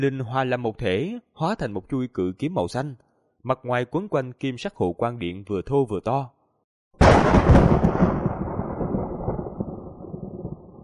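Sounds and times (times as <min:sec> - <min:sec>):
speech: 0:00.0 - 0:06.4
thunder crack and rumble: 0:07.0 - 0:10.8.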